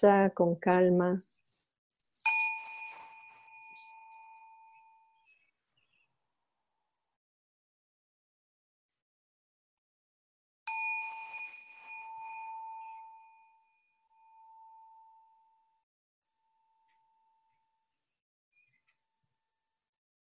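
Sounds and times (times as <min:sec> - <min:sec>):
speech: 0:00.0 - 0:01.4
meditation bell struck and ringing with a clear sustained tone: 0:02.1 - 0:05.3, 0:10.7 - 0:15.8.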